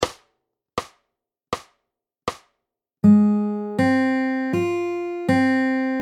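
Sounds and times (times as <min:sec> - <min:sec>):
three string arpeggio played fingerpicking: 0:03.0 - 0:06.0.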